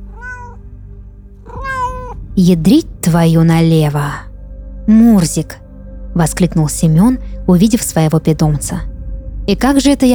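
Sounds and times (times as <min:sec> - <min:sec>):
fluffy cat meowing: 0:00.0 - 0:00.6, 0:01.4 - 0:02.2
speech: 0:02.4 - 0:04.3, 0:04.9 - 0:05.6, 0:06.2 - 0:08.9, 0:09.5 - 0:10.1.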